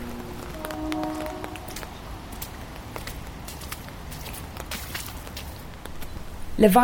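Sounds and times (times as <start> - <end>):
faint tonal hums: 0.0 - 3.6
steady rain pattering on a hard surface: 0.0 - 6.8
speech: 6.6 - 6.8.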